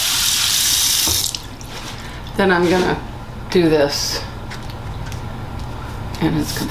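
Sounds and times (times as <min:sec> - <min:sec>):
hot tap water running over a metal offset spatula: 0:00.0 - 0:01.7
speech: 0:02.4 - 0:04.3, 0:06.2 - 0:06.6.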